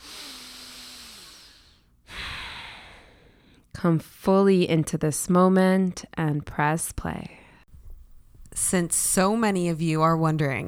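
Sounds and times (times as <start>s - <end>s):
deep breath during a guided relaxation: 0.0s - 3.6s
speech: 3.8s - 7.4s, 8.6s - 10.6s.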